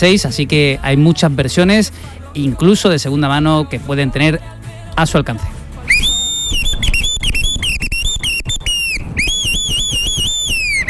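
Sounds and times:
speech: 0.0 - 5.6
loud shrill whistle warbling in rapid trills: 5.9 - 10.8.

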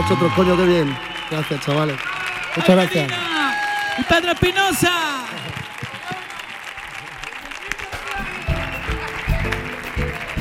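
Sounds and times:
audience whoops and cheering voices: 0.0 - 9.1
audience applause: 0.0 - 10.4
speech: 0.1 - 3.3, 4.0 - 5.3.

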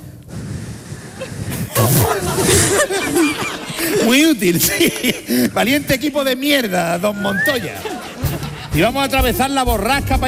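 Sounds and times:
laughter: 1.2 - 6.1, 7.0 - 9.3
speech: 2.8 - 8.0, 8.8 - 10.2
person attempting to whistle with a breathy airy hiss: 7.1 - 7.8.

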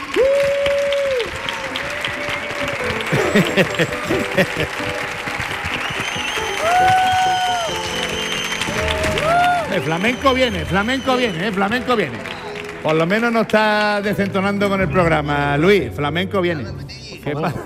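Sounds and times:
crowd cheering: 0.0 - 14.9
audience clapping: 0.0 - 15.0
laughter: 3.0 - 5.3, 17.3 - 17.6
speech: 3.4 - 5.0, 9.8 - 17.6
whistles: 5.6 - 12.4, 14.7 - 15.3.

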